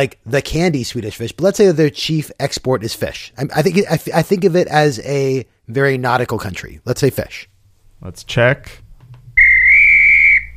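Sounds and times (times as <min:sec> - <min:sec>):
speech: 0:00.0 - 0:08.8
referee-style whistle blast: 0:09.4 - 0:10.5.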